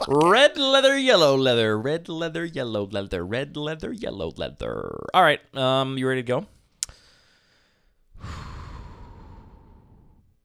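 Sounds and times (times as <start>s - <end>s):
speech: 0.0s - 6.6s
big deep breath bracing before something unpleasant: 6.8s - 10.4s.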